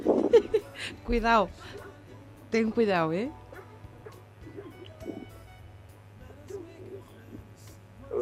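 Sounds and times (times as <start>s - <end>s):
laughter: 0.2s - 0.9s
speech: 0.8s - 1.8s, 2.5s - 3.4s
mastiff dogs barking: 3.5s - 5.1s.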